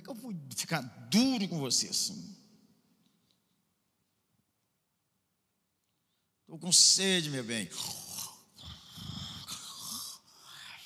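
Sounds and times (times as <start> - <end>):
steady hiss of noise: 0.0 - 10.8
speech: 0.2 - 2.4, 6.5 - 8.1
voice imitating loud rasping snoring: 7.7 - 10.8.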